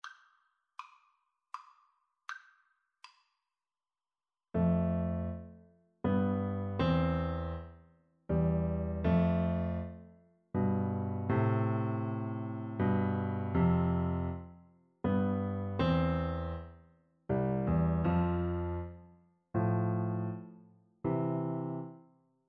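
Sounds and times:
orchestral piece arranged as a piano duet: 4.6 - 7.7, 8.3 - 16.7, 17.3 - 18.9, 19.6 - 22.0.

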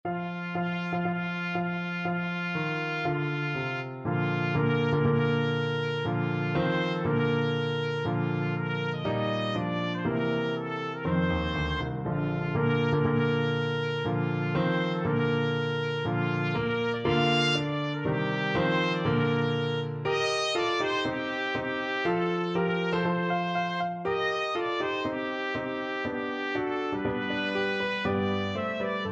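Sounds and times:
trumpet playing a wedding march: 0.1 - 29.1.

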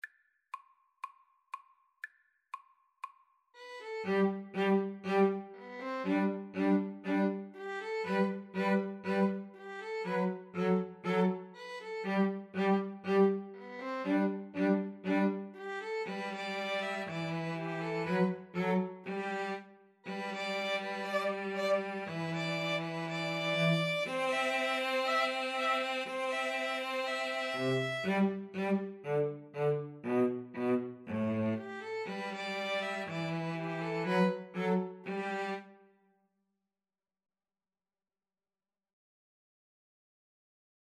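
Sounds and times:
string trio playing a folk tune: 3.8 - 35.7.

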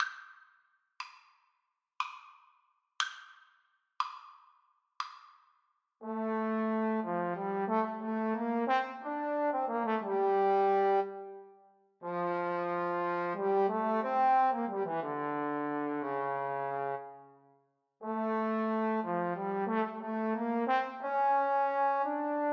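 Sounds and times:
adagio trombone duet: 6.0 - 11.3, 12.0 - 17.1, 18.0 - 22.5.

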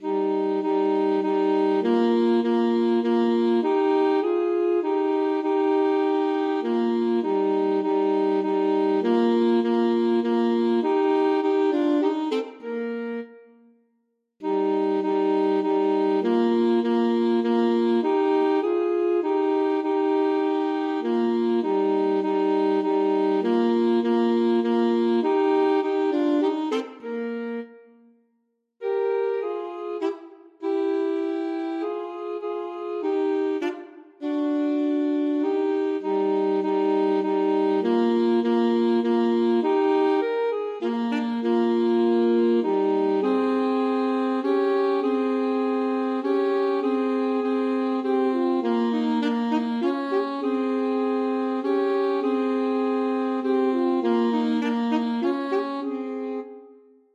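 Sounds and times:
alto saxophone duet playing a minuet: 0.0 - 13.6, 14.4 - 28.2, 28.8 - 57.1.

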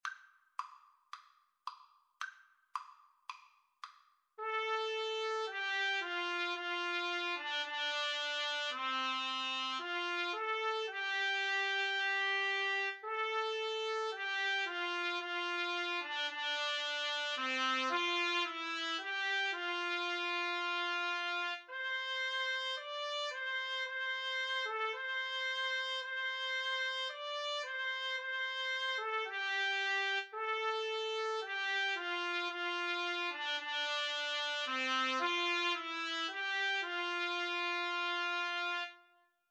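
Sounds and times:
two trumpets playing a hymn: 4.4 - 39.1.

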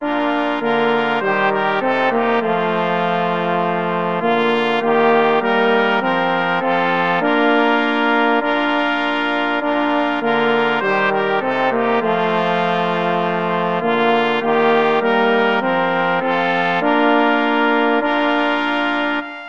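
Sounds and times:
brass quartet playing a tune: 0.0 - 19.4.

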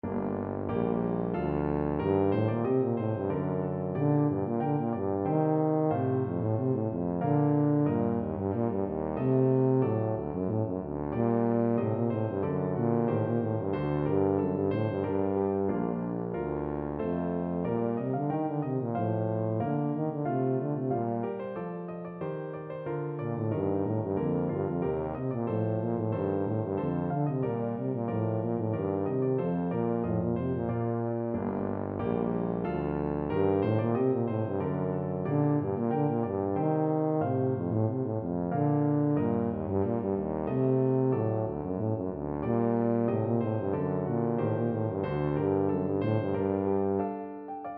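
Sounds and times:
tuba playing a Baroque rondeau: 0.0 - 22.3, 23.0 - 47.5.

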